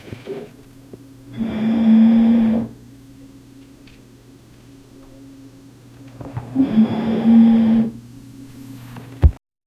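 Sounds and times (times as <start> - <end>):
shelf groaning: 0.0 - 2.9, 6.1 - 9.4
low hum: 0.0 - 9.4.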